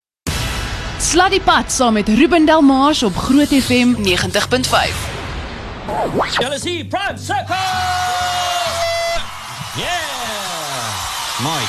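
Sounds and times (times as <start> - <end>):
speech: 1.0 - 5.1, 5.9 - 8.2, 9.8 - 10.1, 11.4 - 11.6
people screaming and whooping: 7.6 - 11.6.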